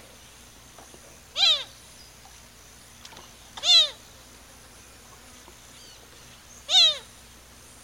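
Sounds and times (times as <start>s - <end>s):
quiet background noise: 0.0s - 7.8s
Azure gallinule calling in Ecuador: 1.3s - 1.7s, 3.6s - 4.0s, 6.6s - 7.1s.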